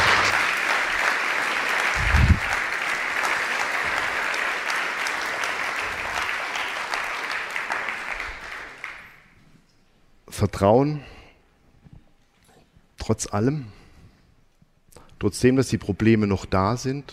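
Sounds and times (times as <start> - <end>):
audience applause: 0.0 - 9.2
speech: 10.4 - 11.2, 13.1 - 13.8, 15.2 - 17.1.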